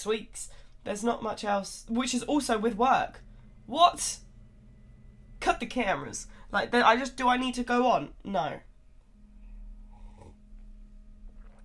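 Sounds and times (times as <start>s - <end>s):
speech: 0.0s - 4.2s, 5.4s - 8.7s
low steady hum: 0.0s - 11.6s
slurping sips from a drink: 9.9s - 10.4s.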